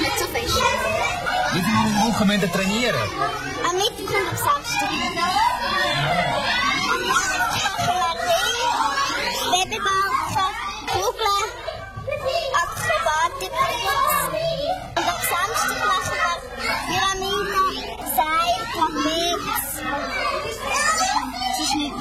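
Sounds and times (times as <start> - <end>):
crowd of children shouting and chattering while practising at a circus: 0.0 - 21.9
speech: 1.5 - 8.9.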